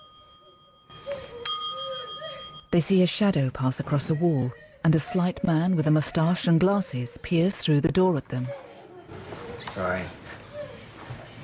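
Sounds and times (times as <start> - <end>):
front desk bell rung by slapping the button: 0.0 - 2.8
speech: 2.7 - 8.6, 9.8 - 10.2.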